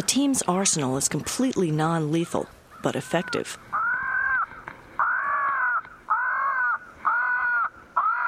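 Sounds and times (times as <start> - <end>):
speech: 0.0 - 3.8
tape-recorded crow distress call broadcast among tall pines and oaks near a ball field: 2.7 - 8.2.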